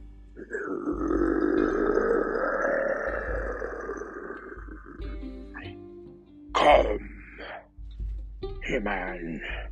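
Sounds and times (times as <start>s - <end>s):
deep powerful growl: 0.4s - 5.1s
speech: 8.8s - 9.7s.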